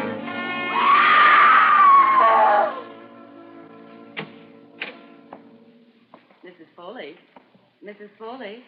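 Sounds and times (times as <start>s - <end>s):
woman screaming: 0.8s - 2.9s.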